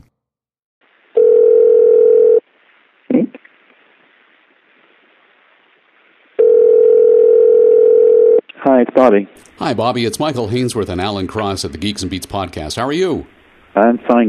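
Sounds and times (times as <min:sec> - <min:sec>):
long steady electronic telephone ring tones: 0:01.2 - 0:02.4, 0:06.4 - 0:08.4
speech: 0:08.8 - 0:14.2.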